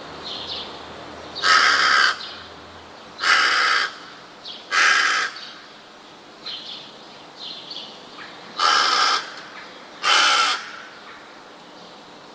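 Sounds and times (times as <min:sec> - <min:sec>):
rook giving loud grating caws: 0:01.4 - 0:02.5, 0:03.2 - 0:05.8, 0:08.2 - 0:11.4.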